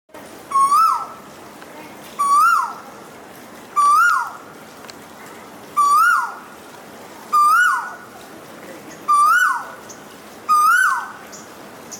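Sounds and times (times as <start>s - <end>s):
red-billed hornbill call: 0.5s - 1.2s, 2.2s - 2.8s, 3.8s - 4.4s, 5.8s - 6.4s, 7.3s - 8.0s, 9.1s - 9.9s, 10.5s - 11.5s.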